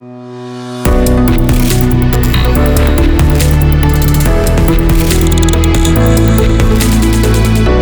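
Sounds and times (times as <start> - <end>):
ambient technology logo: 0.9 - 7.7.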